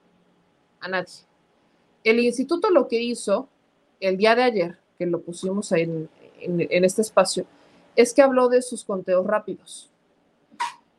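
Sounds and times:
speech: 0.8 - 1.3, 2.0 - 9.9
sneeze: 10.6 - 10.8.

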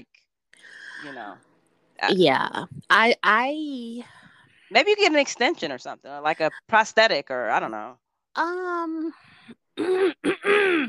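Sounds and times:
speech: 0.0 - 10.8
person clearing throat: 9.8 - 10.8.

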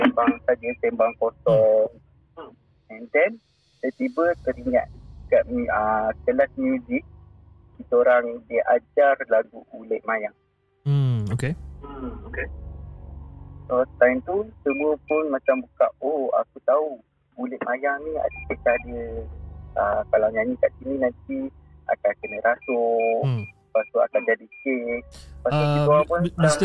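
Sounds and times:
people chatting: 0.0 - 7.0, 7.8 - 10.3, 10.9 - 12.5, 13.7 - 19.2, 19.8 - 26.6
speech: 0.5 - 7.1, 7.8 - 12.6, 13.7 - 26.6
detector device giving short high electronic ticking beeps: 23.2 - 23.5.

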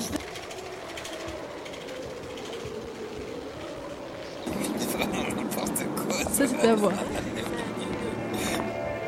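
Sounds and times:
bicycle freewheel ratcheting: 0.0 - 6.5
laughter: 4.5 - 8.9
speech: 6.4 - 7.2.

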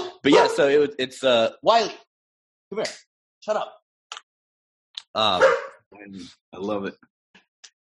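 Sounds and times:
dog barking at the door: 0.0 - 0.7, 5.3 - 5.8
speech: 0.2 - 2.0, 2.7 - 3.8, 5.2 - 7.1.

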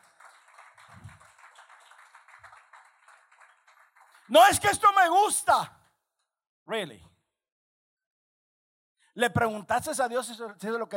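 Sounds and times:
audience at a church service applauding: 0.0 - 5.0
speech: 4.3 - 5.8, 6.7 - 7.1, 9.2 - 10.9.

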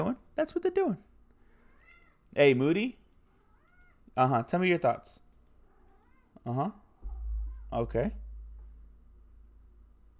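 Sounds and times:
speech: 0.0 - 1.1, 2.3 - 3.0, 4.2 - 5.2, 6.4 - 6.8, 7.7 - 8.2
cat meowing: 3.4 - 4.1, 5.7 - 6.4
low thump: 7.0 - 10.1.

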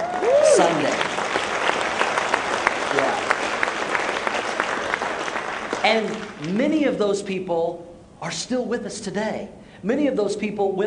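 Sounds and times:
crowd applauding: 0.0 - 6.5
speech: 5.8 - 10.8.

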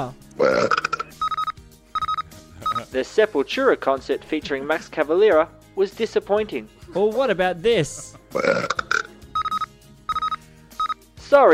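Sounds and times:
speech: 0.0 - 0.9, 2.9 - 8.7, 11.4 - 11.5
loud rumbling burp: 0.4 - 1.1, 8.3 - 9.1
short electronic beeps: 1.2 - 2.9, 9.4 - 11.0.

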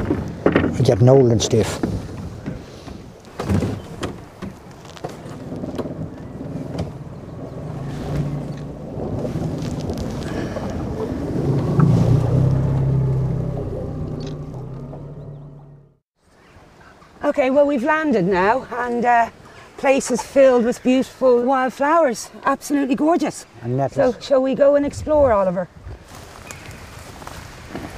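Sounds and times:
wind gusts buffeting the microphone: 0.0 - 14.2, 17.6 - 27.9
speech: 0.8 - 1.9, 17.5 - 25.8
boat engine drone on water: 7.0 - 16.0.

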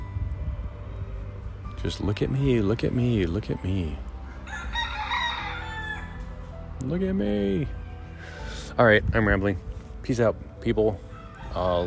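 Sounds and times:
speech: 1.8 - 4.1, 6.8 - 11.8
rooster crowing: 4.2 - 6.4, 11.0 - 11.6.

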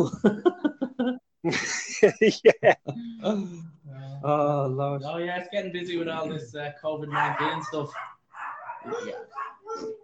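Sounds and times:
laughter: 0.0 - 3.0
speech: 0.0 - 8.2, 8.8 - 10.0
dog barking: 7.1 - 10.0.

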